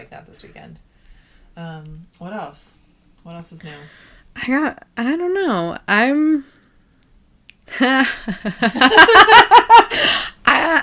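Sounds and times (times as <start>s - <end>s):
speech: 0.0s - 0.9s, 1.6s - 6.6s, 7.7s - 10.3s
person laughing: 7.7s - 10.8s.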